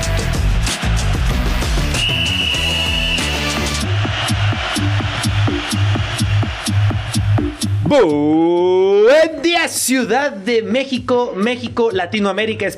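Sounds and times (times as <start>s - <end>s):
punchy music bed with heavy drums: 0.0s - 7.9s
referee's whistle blast: 1.9s - 3.7s
speech: 7.9s - 12.7s.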